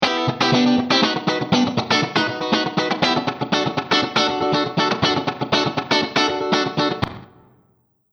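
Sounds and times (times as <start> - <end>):
funk guitar in a hall: 0.0 - 7.5.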